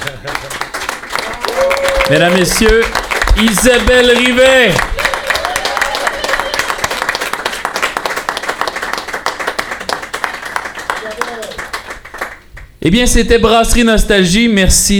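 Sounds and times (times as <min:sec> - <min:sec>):
laughter: 0:00.0 - 0:00.7
audience applause: 0:00.0 - 0:12.4
speech: 0:02.1 - 0:04.9, 0:12.8 - 0:14.9.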